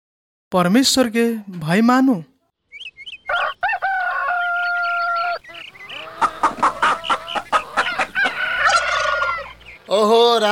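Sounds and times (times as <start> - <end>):
speech: 0.5 - 2.3, 9.9 - 10.5
rooster crowing and squawking before being slaughtered: 3.2 - 9.8.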